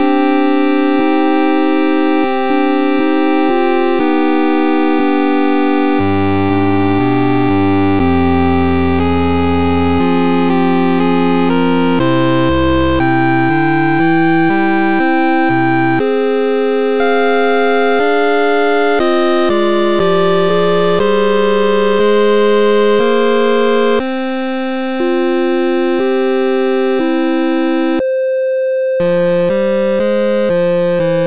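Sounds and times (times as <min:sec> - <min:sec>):
8-bit requiem loop: 0:00.0 - 0:28.0, 0:29.0 - 0:31.2.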